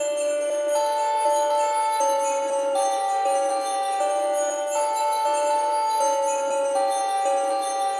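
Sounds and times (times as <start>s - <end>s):
synth bell in A: 0.0s - 7.9s.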